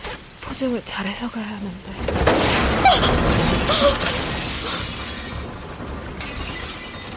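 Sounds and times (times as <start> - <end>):
speech: 0.5 - 4.2
window glass shattering: 2.0 - 7.1
glass fragments tinkling: 2.4 - 7.1.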